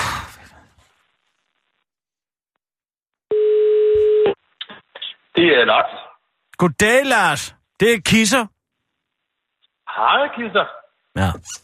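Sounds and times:
telephone ringing tone while placing a call: 3.3 - 4.3
speech: 5.4 - 6.0, 6.6 - 8.5, 9.9 - 11.6.

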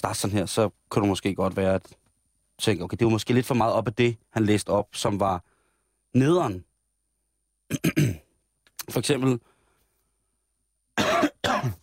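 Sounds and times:
speech: 0.0 - 2.0, 2.6 - 5.5, 6.1 - 6.7, 7.7 - 8.2, 8.8 - 9.5
person coughing: 7.7 - 8.3, 11.0 - 11.8.

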